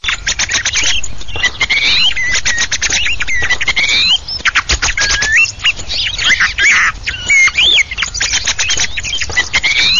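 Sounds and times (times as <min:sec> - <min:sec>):
mistle thrush: 0:00.0 - 0:09.9.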